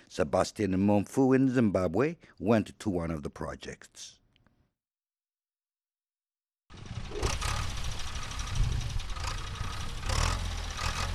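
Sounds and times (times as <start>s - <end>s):
speech: 0.1s - 4.2s
tractor engine chugging while tilling farmland: 6.7s - 11.1s
tractor machinery rattling and clanking: 6.7s - 11.1s.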